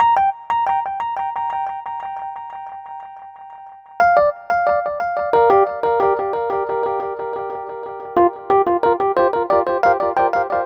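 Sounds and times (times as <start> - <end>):
nu jazz piano and electric piano loop with echo: 0.0 - 10.6.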